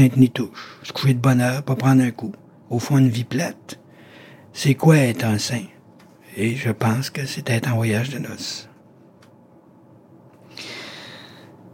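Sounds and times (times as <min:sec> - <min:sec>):
speech: 0:00.0 - 0:03.8, 0:04.6 - 0:05.7, 0:06.4 - 0:08.7
deep breath in: 0:03.9 - 0:04.5, 0:10.5 - 0:11.6.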